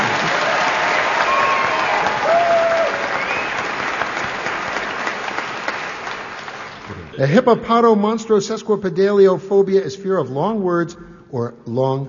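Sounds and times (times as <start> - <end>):
crowd applauding: 0.0 - 7.3
faint whistles: 3.1 - 3.6
speech: 7.2 - 12.0.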